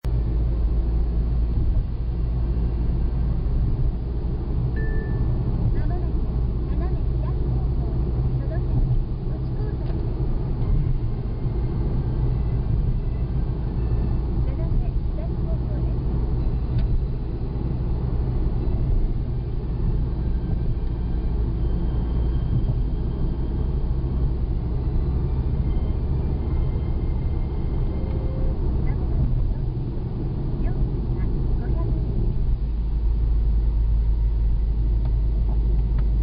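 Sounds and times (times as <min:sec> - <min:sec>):
highway traffic at night: 0:00.0 - 0:36.2.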